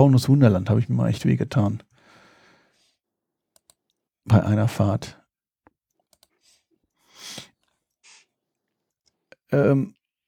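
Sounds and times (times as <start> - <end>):
speech: 0.0 - 1.9, 4.2 - 5.2, 9.5 - 10.0
computer mouse clicks: 3.6 - 4.0, 6.1 - 6.4.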